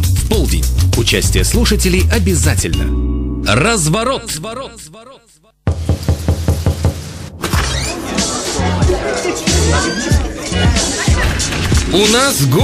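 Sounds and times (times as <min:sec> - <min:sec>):
speech: 0:01.1 - 0:06.0, 0:08.1 - 0:12.6
loud heavy bangs on a door: 0:05.7 - 0:07.1
laughter: 0:07.6 - 0:11.7.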